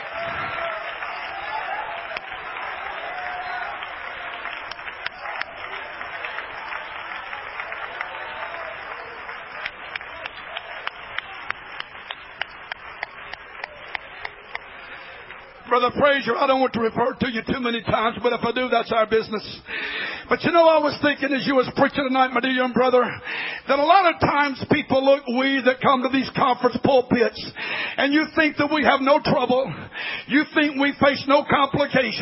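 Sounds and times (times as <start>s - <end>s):
audience clapping hands: 0.0s - 16.2s
speech: 15.8s - 32.1s.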